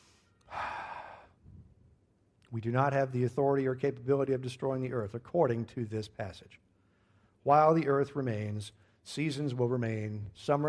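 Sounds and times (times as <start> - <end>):
deep breath: 0.0 - 1.7, 6.7 - 7.4
speech: 2.5 - 6.7, 7.4 - 10.6.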